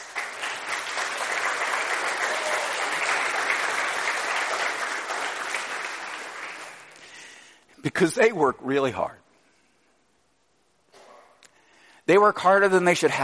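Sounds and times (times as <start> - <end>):
large audience applause: 0.0 - 7.2
speech: 7.8 - 9.2, 12.1 - 13.2.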